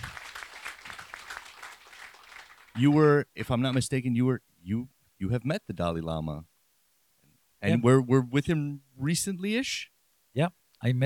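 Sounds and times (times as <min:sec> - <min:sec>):
audience applause: 0:00.0 - 0:03.1
speech: 0:02.8 - 0:06.5, 0:07.6 - 0:11.0.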